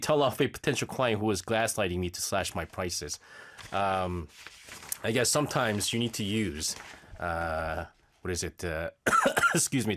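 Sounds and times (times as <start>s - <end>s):
speech: 0.1s - 9.9s
person clearing throat: 9.0s - 9.7s
person coughing from something stuck in the throat: 9.0s - 9.7s.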